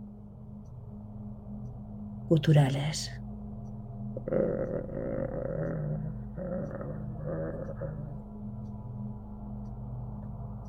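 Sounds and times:
dark droning background: 0.0 - 10.6
speech: 2.3 - 3.2
low rumbling growls and guttural snarls: 4.2 - 8.3.

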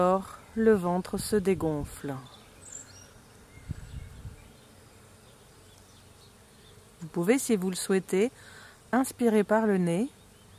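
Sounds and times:
speech: 0.0 - 2.4, 7.2 - 10.2
bees buzzing in a garden: 0.0 - 10.5
soft bird chirps: 2.2 - 6.9.

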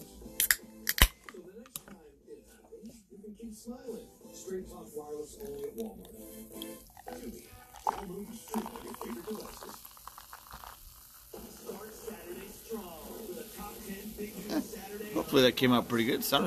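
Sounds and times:
speech: 3.6 - 9.8, 15.3 - 16.4
beer poured into a pint glass: 5.0 - 15.6
soft foamy hiss of beer: 8.2 - 16.4.

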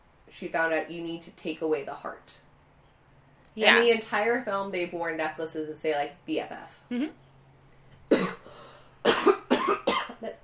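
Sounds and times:
speech: 0.3 - 2.5, 3.6 - 7.2
sudden loud harsh coughing: 8.1 - 10.4.

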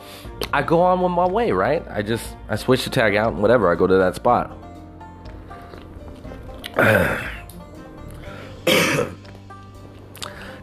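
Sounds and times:
speech: 0.5 - 4.6
harsh raspy phlegmy coughs from a person whose chest is hurting: 6.7 - 7.5, 8.6 - 9.2.

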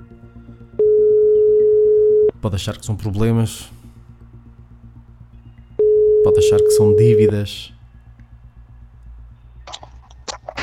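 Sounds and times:
telephone ringing tone beep on an outgoing call: 0.8 - 2.3, 5.8 - 7.3
speech: 2.4 - 3.8, 6.4 - 7.8.

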